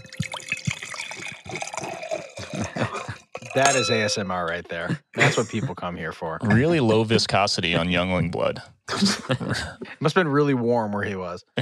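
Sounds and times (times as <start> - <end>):
liquid pouring into a glass: 0.0 - 4.5
laughter: 2.4 - 11.5
speech: 3.6 - 11.5.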